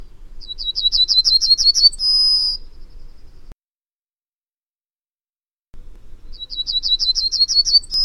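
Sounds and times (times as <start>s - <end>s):
bird singing: 0.0s - 3.6s, 6.2s - 8.0s
faint low noise: 0.0s - 3.6s, 5.8s - 8.0s.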